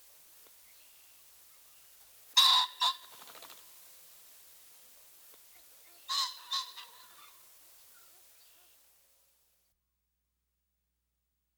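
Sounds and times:
steady soft background hiss: 0.0 - 9.8
male Ring-necked Pheasant giving a harsh two-part squawk: 2.4 - 3.7, 5.5 - 8.8.

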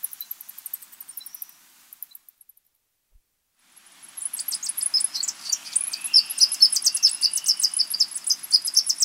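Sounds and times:
white-lined sac-winged bat chirping calls in South American rainforest: 4.3 - 9.0.

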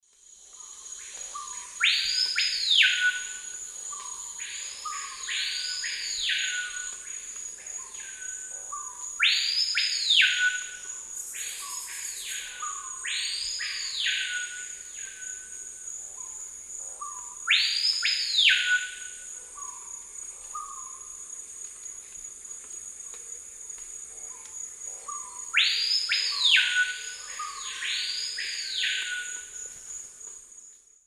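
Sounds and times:
Lipaugus vociferans lek songs in South American eastern lowlands: 0.6 - 7.1, 7.8 - 15.5, 17.0 - 19.9, 25.1 - 29.7.

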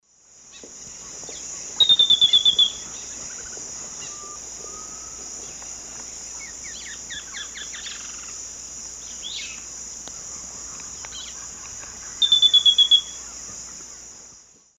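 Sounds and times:
Laterallus exilis song in South America Eastern Lowlands: 0.6 - 5.6, 6.2 - 8.4, 9.0 - 13.4.

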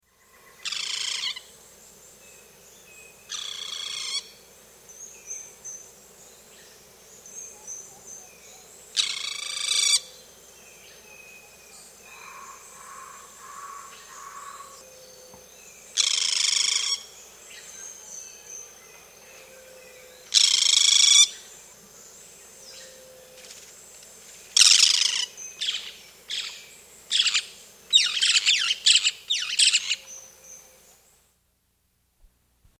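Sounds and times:
boat-billed flycatcher calling in South America: 0.1 - 31.2.

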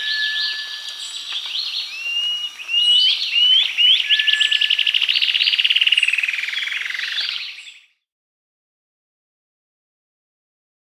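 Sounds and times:
Bluish-slate antshrike Thamnomanes schistogynus calling in the Amazon region: 0.0 - 7.4.

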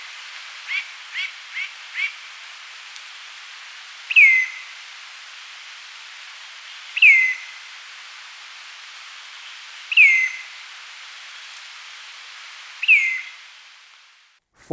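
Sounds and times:
soft hiss: 0.0 - 14.4
Northern mountain cacique sharp downslurred whistle in Ecuador: 4.1 - 4.6, 7.0 - 7.5, 9.9 - 10.5, 12.8 - 13.5.

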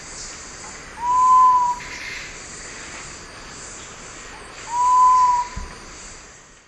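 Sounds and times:
continuous high insect noise: 0.0 - 6.6
sapphire quail-dove Geotrygon saphirina song of low whistled hoots: 1.0 - 2.0, 4.6 - 5.8.

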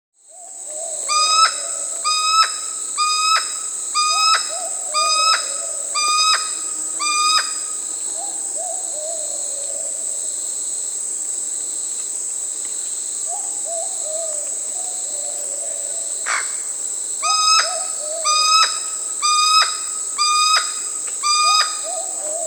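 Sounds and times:
Curl-crested Aracari Pteroglossus beauharnaesii calling in Peru: 1.1 - 7.8, 17.2 - 22.4.

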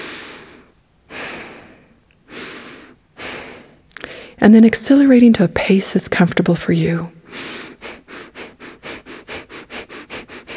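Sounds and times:
breathing in and out through the nose: 0.0 - 4.4, 7.2 - 10.5
speech: 4.4 - 7.5.

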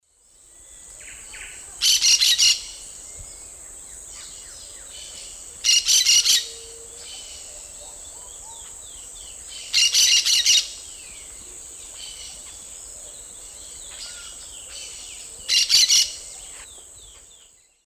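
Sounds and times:
Brotogeris sanctithomae calls in S. America Eastern Lowlands: 1.0 - 17.5.

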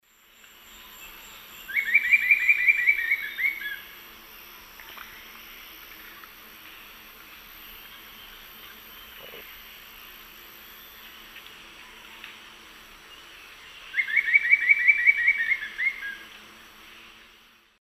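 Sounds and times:
Attila spadiceus calls or alternate song: 1.6 - 4.0, 13.8 - 16.3.

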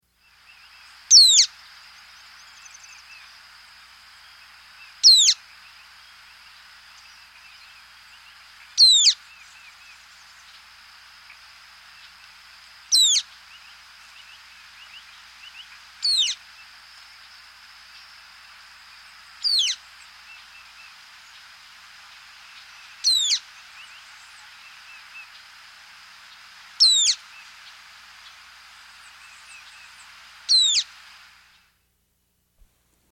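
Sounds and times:
Social Flycatcher calling in South America: 0.1 - 31.7.

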